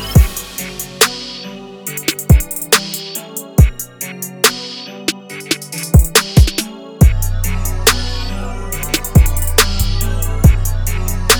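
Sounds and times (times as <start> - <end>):
808 drum machine beat: 0.2 - 11.3.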